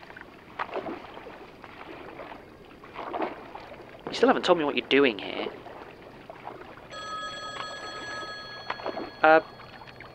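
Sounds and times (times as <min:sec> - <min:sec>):
speech: 0:04.1 - 0:05.6, 0:09.2 - 0:09.5
payphone ringing: 0:06.9 - 0:10.1.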